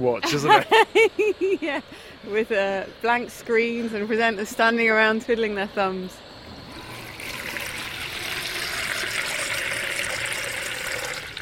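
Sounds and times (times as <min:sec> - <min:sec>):
speech: 0:00.0 - 0:06.3
laughter: 0:00.2 - 0:01.8
water running steadily from a tap: 0:06.7 - 0:11.4.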